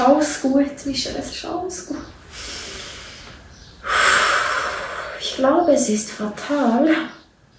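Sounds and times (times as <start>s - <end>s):
speech: 0.1s - 2.6s, 5.4s - 7.2s
loud hissing inhalation: 2.2s - 5.3s
soft airy exhale: 2.3s - 5.4s.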